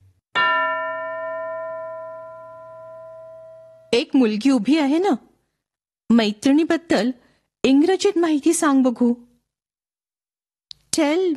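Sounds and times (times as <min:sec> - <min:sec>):
school bell ringing in a classroom: 0:00.4 - 0:04.0
speech: 0:03.9 - 0:05.3, 0:06.1 - 0:09.2, 0:11.0 - 0:11.3.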